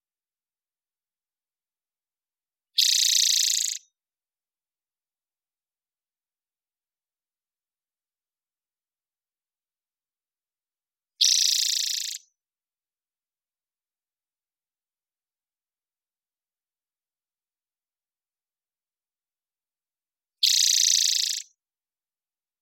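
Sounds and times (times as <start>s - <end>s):
Pipilo maculatus spotted towhee buzzy rattling trills in Washington: 2.8s - 3.8s, 11.2s - 12.2s, 20.4s - 21.5s.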